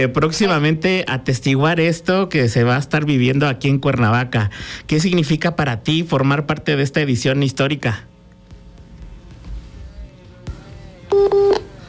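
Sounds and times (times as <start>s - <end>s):
speech: 0.0s - 8.1s
telephone tones on a dropped phone call: 11.1s - 11.7s.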